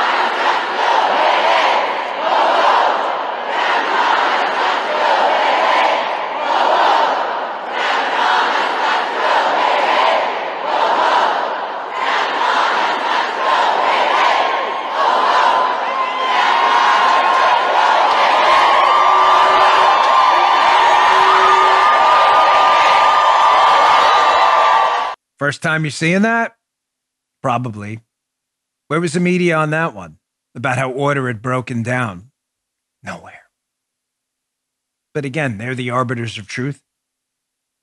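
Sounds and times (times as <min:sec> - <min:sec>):
hundreds of protesters screaming and chanting in office building: 0:00.0 - 0:25.2
speech: 0:25.5 - 0:26.6, 0:27.4 - 0:28.0, 0:28.9 - 0:32.3, 0:35.2 - 0:36.8.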